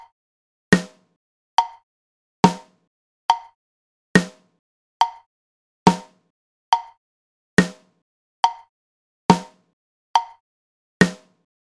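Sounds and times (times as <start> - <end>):
drums playing half notes: 0.7 - 1.0, 2.5 - 2.7, 4.2 - 4.5, 5.9 - 6.1, 7.6 - 7.8, 9.3 - 9.5, 11.0 - 11.3.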